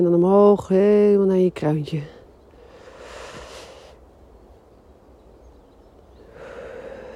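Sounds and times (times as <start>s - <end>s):
speech: 0.0s - 2.2s
slow deep breathing: 2.5s - 4.0s, 6.2s - 7.1s.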